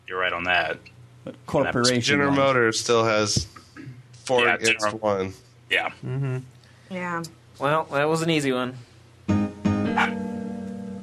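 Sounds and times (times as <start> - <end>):
speech: 0.1 - 3.6, 4.3 - 8.9
dog barking: 9.9 - 10.2.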